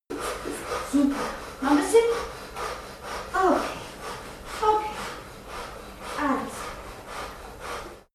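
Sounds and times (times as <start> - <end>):
person breathing fast during birth: 0.1 - 8.1.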